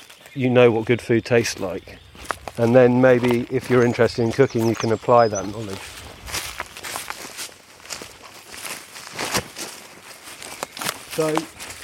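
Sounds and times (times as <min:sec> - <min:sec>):
footsteps crunching walking down from a house into woodland: 0:00.0 - 0:11.8
speech: 0:00.4 - 0:06.0, 0:11.2 - 0:11.6.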